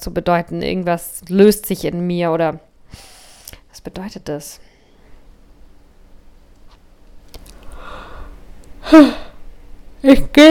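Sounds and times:
speech: 0:00.0 - 0:03.1, 0:03.8 - 0:04.7, 0:08.9 - 0:09.3, 0:10.0 - 0:10.4
person yawning: 0:08.8 - 0:09.4.

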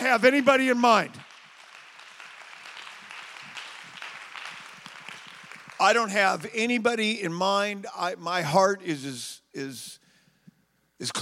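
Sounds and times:
audience clapping hands: 0:00.0 - 0:06.5
speech: 0:00.1 - 0:01.2, 0:05.8 - 0:10.0, 0:11.0 - 0:11.2.

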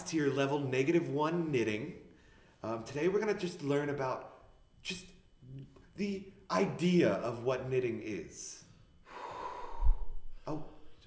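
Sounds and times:
speech: 0:00.1 - 0:08.6, 0:10.5 - 0:11.0
loud heavy breath: 0:09.0 - 0:10.5.

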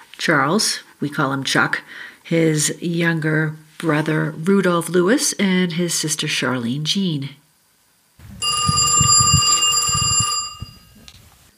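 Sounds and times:
speech: 0:00.2 - 0:07.4
telephone bell ringing: 0:08.4 - 0:11.1.

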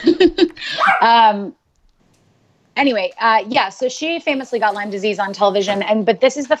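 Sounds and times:
dog whining excited by a squirrel: 0:00.8 - 0:01.1
dog yipping excited by a squirrel: 0:00.8 - 0:01.2
speech: 0:01.0 - 0:01.6, 0:02.8 - 0:06.5.

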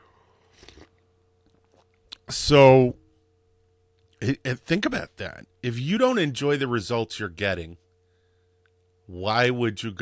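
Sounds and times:
low steady hum: 0:00.0 - 0:09.9
person sipping coffee: 0:00.2 - 0:02.2
speech: 0:02.4 - 0:03.0, 0:04.2 - 0:07.8, 0:09.1 - 0:09.9.

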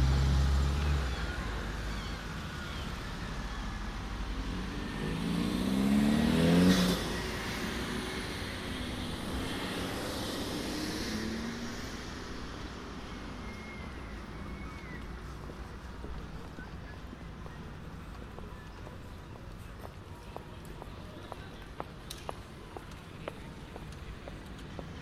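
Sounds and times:
vehicle passing in a city square: 0:00.0 - 0:16.9
steady traffic noise in a city square: 0:00.0 - 0:25.0
small clicks and taps from pedestrians: 0:17.4 - 0:25.0.

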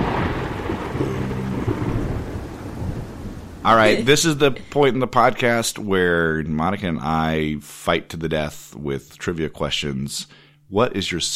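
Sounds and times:
deep sustained rumble of thunder: 0:00.0 - 0:04.6
steady wash of rain: 0:00.0 - 0:04.7
low tonal swell: 0:01.0 - 0:03.2
speech: 0:03.7 - 0:11.3.

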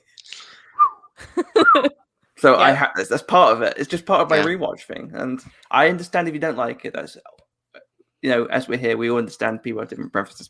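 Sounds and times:
person whistling along with a theme tune: 0:00.8 - 0:01.9
speech: 0:01.7 - 0:07.4, 0:08.2 - 0:10.4
short burst of voiced sound: 0:04.3 - 0:04.5.

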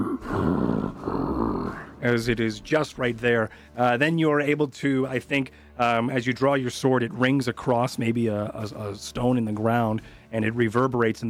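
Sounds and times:
large creature grunting in pain: 0:00.0 - 0:02.0
speech: 0:02.0 - 0:11.2.

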